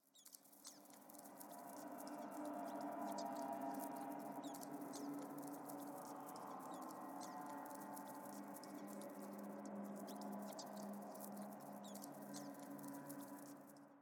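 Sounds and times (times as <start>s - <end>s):
eerie ambient sound: 0.4s - 14.0s.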